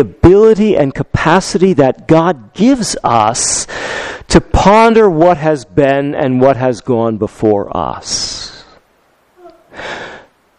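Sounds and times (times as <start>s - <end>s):
speech: 0.0s - 8.4s
person yawning during a sermon: 9.4s - 10.3s.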